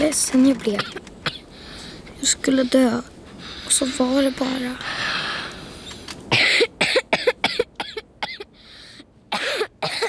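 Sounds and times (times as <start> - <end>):
speech: 0.1 - 1.1, 2.2 - 5.0
person coughing hard in a harsh fit: 6.3 - 8.5, 9.3 - 10.0.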